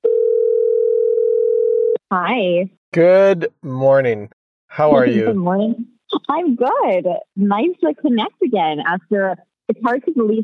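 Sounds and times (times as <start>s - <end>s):
telephone dial tone while placing a call: 0.0s - 2.0s
speech: 2.1s - 10.4s.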